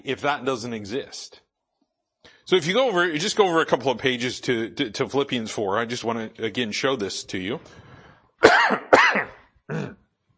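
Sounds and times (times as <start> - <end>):
speech: 0.0 - 1.4, 2.5 - 7.8, 8.4 - 8.9, 9.7 - 10.0
person clearing a scratchy throat: 8.4 - 10.1.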